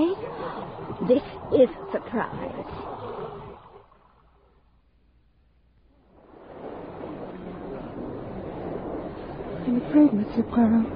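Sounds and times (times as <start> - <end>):
boat moving through water: 0.0 - 10.9
speech: 1.0 - 2.9, 9.9 - 10.9.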